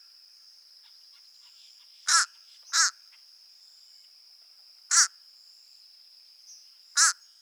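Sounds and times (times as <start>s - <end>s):
Corvus ossifragus calling: 2.1s - 3.0s, 4.9s - 5.1s, 6.9s - 7.3s.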